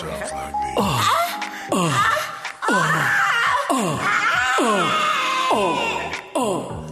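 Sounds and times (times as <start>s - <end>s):
speech: 0.8s - 2.1s
several people screaming loudly on purpose: 1.9s - 6.6s.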